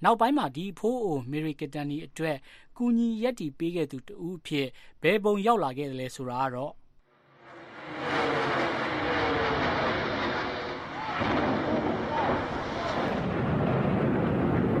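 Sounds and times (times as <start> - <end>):
speech: 0.0 - 6.8
skyscraper tower exploding after a plane crash in a terrorist attack: 7.3 - 14.7.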